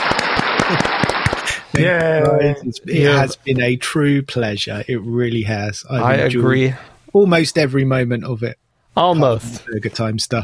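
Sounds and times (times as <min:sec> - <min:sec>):
dense loud applause: 0:00.0 - 0:02.3
speech: 0:00.7 - 0:00.9, 0:01.8 - 0:10.4.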